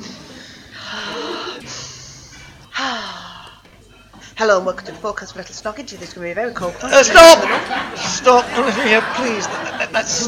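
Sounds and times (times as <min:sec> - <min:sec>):
nervous person taking deep breaths before speaking into a microphone: 0:00.0 - 0:04.4
louder partly voiced sigh: 0:00.2 - 0:03.7
speech: 0:04.4 - 0:10.2
laughter: 0:06.8 - 0:10.2.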